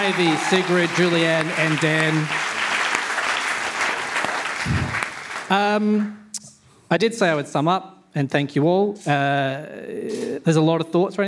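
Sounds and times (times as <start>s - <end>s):
speech: 0.0s - 2.5s, 4.6s - 6.3s, 6.9s - 11.2s
room full of people applauding: 0.0s - 6.0s.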